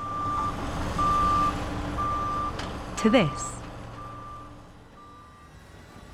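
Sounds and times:
reversing alarm on diesel construction vehicles: 0.0 - 2.5, 3.3 - 5.6
speech: 3.0 - 3.6.

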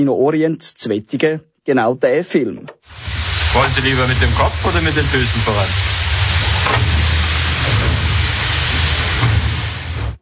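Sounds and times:
speech: 0.0 - 3.0, 3.6 - 6.1
hissing and deep roaring of a glowing steam boiler firebox: 2.9 - 10.2.

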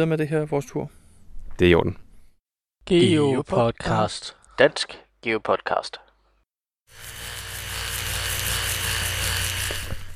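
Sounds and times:
speech: 0.0 - 1.0, 1.6 - 2.0, 2.8 - 6.0
electric toothbrush buzzing: 6.9 - 10.1.

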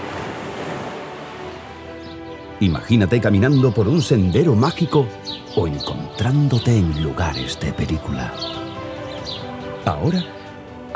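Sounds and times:
ocean surf on a kilometres-long beach in Huelva: 0.0 - 1.6
soft tonal music: 0.7 - 10.9
speech: 2.6 - 8.6, 9.8 - 10.9.

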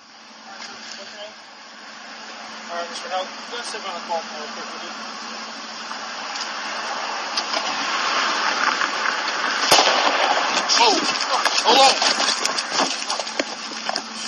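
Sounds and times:
rumble of a passing car engine: 0.0 - 14.2
gunshots fired at police from passing car: 9.6 - 11.6.

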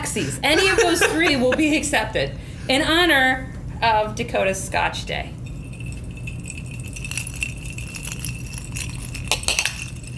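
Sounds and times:
laughter: 0.0 - 2.1
low hum: 0.0 - 10.1
speech: 0.2 - 5.4
glasses clinking in a toast: 5.4 - 10.1.

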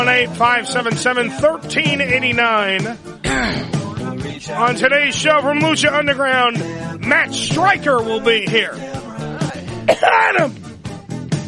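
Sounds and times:
speech: 0.0 - 9.0, 9.9 - 10.6
person clearing throat: 3.2 - 3.9, 9.8 - 10.6
person coughing: 3.2 - 3.9, 9.8 - 10.6.

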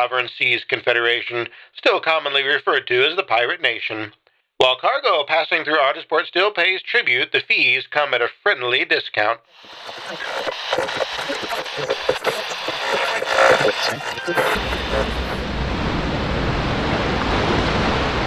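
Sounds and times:
speech: 0.0 - 15.4
stormy sea waves at night: 14.6 - 18.2.

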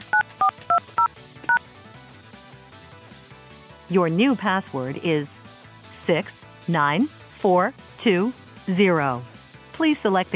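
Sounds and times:
telephone keypad touch-tones entering a voicemail password: 0.0 - 1.6
speech: 3.9 - 5.4, 6.1 - 10.3.

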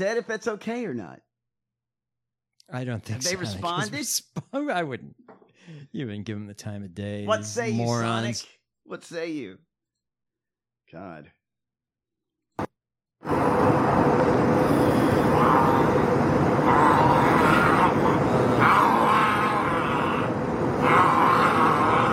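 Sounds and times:
speech: 0.0 - 1.3, 2.7 - 9.7, 10.9 - 11.4, 13.2 - 19.4
airplane cabin engine drone: 13.2 - 22.1
man growling inside an airplane cabin: 15.0 - 22.1.

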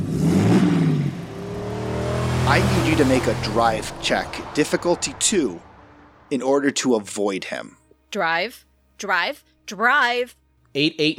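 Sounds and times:
heavy tow truck engine revving as it speeds up: 0.0 - 6.5
speech: 2.5 - 5.7, 6.3 - 11.1.

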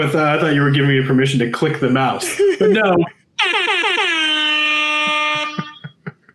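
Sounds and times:
speech: 0.0 - 3.8
laughter: 2.1 - 3.1, 5.0 - 6.3
loud blaring air horn sound effect: 3.4 - 5.8.

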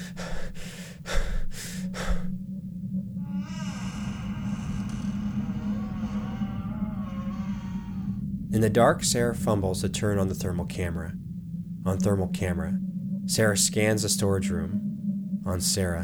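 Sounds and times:
person breathing heavily in darkness in a church storage room: 0.0 - 2.5, 3.2 - 10.4
low droning hum with faint wavering tones: 0.0 - 16.0
speech: 8.6 - 11.2, 11.8 - 16.0.

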